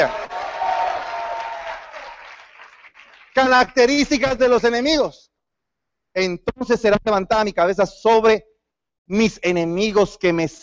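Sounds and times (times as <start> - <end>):
audience shouting for joy to the Lord: 0.0 - 2.1
audience applauding: 0.0 - 3.9
speech: 3.4 - 5.3, 6.2 - 8.5, 9.1 - 10.6.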